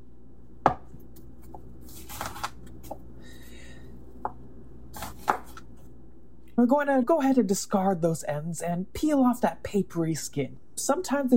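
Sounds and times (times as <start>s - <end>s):
knife slicing across the root end of an onion on a cutting board: 4.9s - 5.6s
speech: 6.6s - 11.3s.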